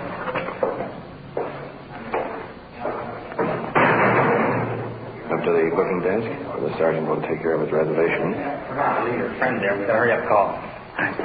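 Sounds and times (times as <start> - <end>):
metallic clanks and thuds: 0.2 - 5.0
heavy iron door slamming shut: 3.4 - 5.1
speech: 5.4 - 11.2.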